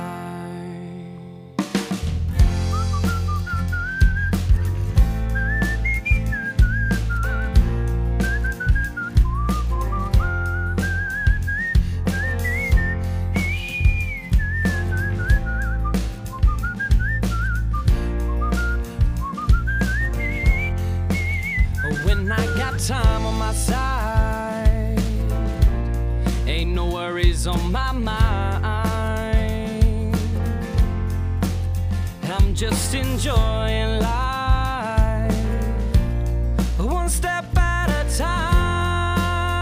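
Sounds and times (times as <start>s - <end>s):
thumping beat: 1.8s - 39.5s
deep bass line: 2.0s - 39.5s
person whistling a bright wandering melody: 2.6s - 24.6s.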